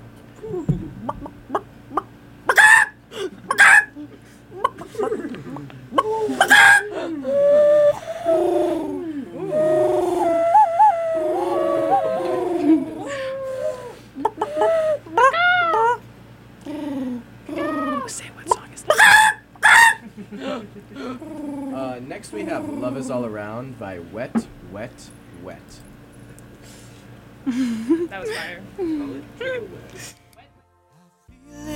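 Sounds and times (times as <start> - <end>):
person imitating bird calls: 0.4 - 16.0, 16.6 - 18.2, 21.2 - 23.2
laughter: 3.2 - 10.3, 11.4 - 13.4, 20.0 - 21.4, 27.5 - 29.7.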